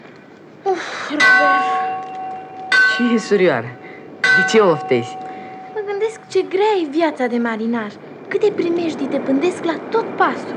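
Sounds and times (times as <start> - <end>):
large ship's fog bell on the mast clanging in fog: 1.2 - 6.2
speech: 3.0 - 3.8, 4.4 - 5.2, 6.3 - 10.5.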